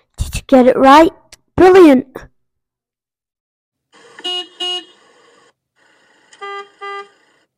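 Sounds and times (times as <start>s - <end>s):
speech: 0.5s - 2.3s
car horn honking: 4.0s - 5.3s, 6.3s - 7.3s.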